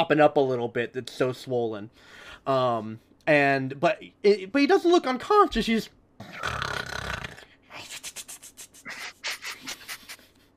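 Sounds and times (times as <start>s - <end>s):
speech: 0.0s - 6.6s
voice imitating snoring: 6.2s - 7.5s.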